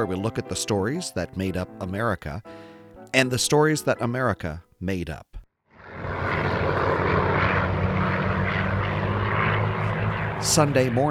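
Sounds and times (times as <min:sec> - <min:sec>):
speech: 0:00.0 - 0:05.4, 0:10.4 - 0:11.0
propeller planes passing overhead: 0:05.8 - 0:11.0.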